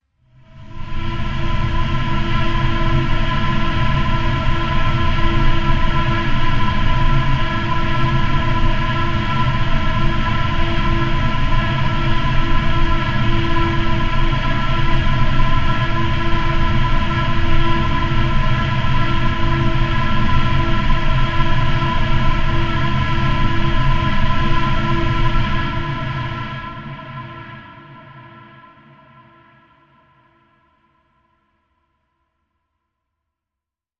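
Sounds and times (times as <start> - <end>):
tunnel drone: 0.3 - 29.5.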